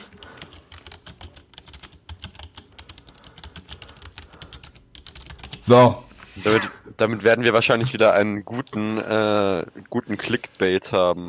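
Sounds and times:
rapid typing on a computer keyboard: 0.0 - 5.7
speech: 5.6 - 11.2.

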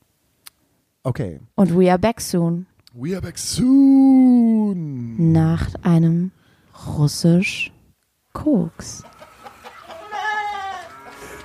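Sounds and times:
speech: 1.0 - 7.8, 8.4 - 9.1
clucks and calls from other livestock: 8.8 - 11.4
loud wavering bleat-like animal cry on a pig farm: 9.8 - 11.4.

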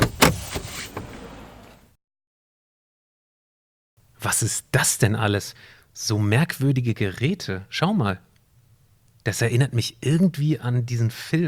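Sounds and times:
DeLorean car door opening with latch click: 0.0 - 1.9
speech: 4.2 - 8.3, 9.2 - 11.4.

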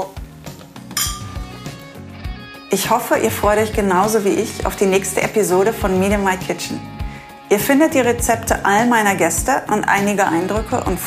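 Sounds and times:
two glasses clinking in a toast: 0.9 - 1.6
speech: 2.7 - 11.0.

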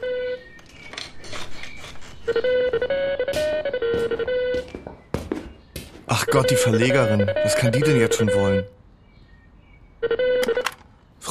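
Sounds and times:
phone's melodic electronic ringtone: 0.0 - 0.7, 2.2 - 4.8, 6.1 - 8.8, 10.0 - 10.8
speech: 2.3 - 3.4, 6.1 - 8.8.

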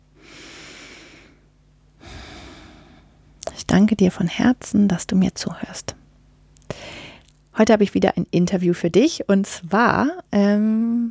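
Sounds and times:
deep breath in and out: 0.2 - 3.3, 6.7 - 7.3
speech: 3.7 - 6.0, 7.6 - 11.1.

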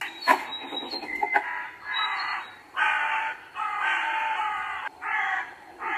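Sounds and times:
crows cawing in a garden: 1.4 - 5.9.

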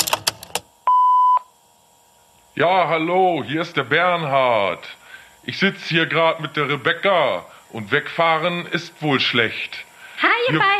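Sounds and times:
answering machine beep starting message playback: 0.9 - 1.5
speech: 2.6 - 10.7.

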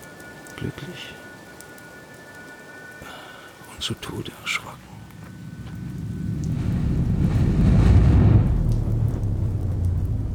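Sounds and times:
steady rain hissing: 0.0 - 10.3
speech: 0.6 - 1.3, 3.8 - 5.0
deep rumbling low roar: 5.2 - 10.3.

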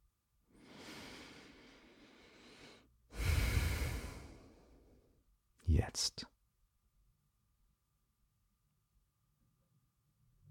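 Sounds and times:
deep breath in and out: 0.5 - 5.2
speech: 5.8 - 6.3.

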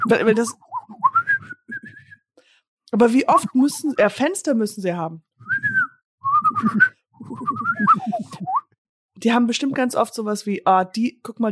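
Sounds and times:
speech: 0.0 - 0.7, 2.9 - 5.6, 6.6 - 8.6, 9.2 - 11.4
person whistling a playful bird-like tune imitating birdsong: 0.0 - 2.3, 5.4 - 8.7.

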